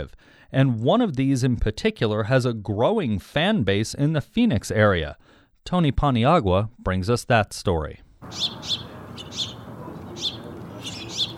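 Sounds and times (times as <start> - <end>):
speech: 0.0 - 9.5
house finches and house sparrows chirping at a bird feeder in Arizona: 8.2 - 11.3
low outdoor rumble: 8.2 - 11.3.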